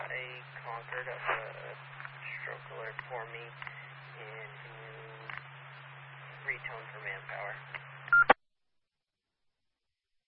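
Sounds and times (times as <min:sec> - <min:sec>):
faint low hum: 0:00.0 - 0:08.4
speech: 0:00.8 - 0:04.8, 0:06.5 - 0:08.3
single short telephone keypad tone beep: 0:08.1 - 0:08.4.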